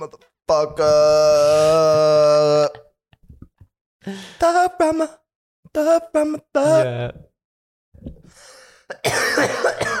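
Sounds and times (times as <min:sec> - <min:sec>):
speech: 0:00.0 - 0:02.7, 0:04.1 - 0:07.3
person coughing: 0:08.9 - 0:09.9.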